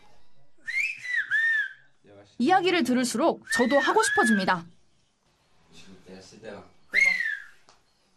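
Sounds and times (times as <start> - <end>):
whistled language with gliding warbling pitch: 0.6 - 1.9, 3.5 - 4.4, 6.9 - 7.7
speech: 2.4 - 4.8, 6.3 - 6.8.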